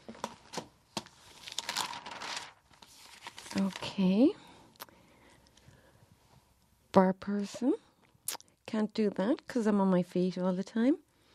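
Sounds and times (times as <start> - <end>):
local newspaper pages rustling and crinkling: 0.0 - 4.1
speech: 3.6 - 4.4, 6.9 - 7.8, 8.7 - 11.0.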